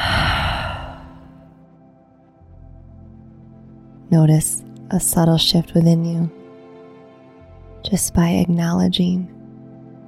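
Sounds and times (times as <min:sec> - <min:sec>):
slow breath with a sigh: 0:00.0 - 0:01.4
speech: 0:04.1 - 0:06.4, 0:07.9 - 0:09.4.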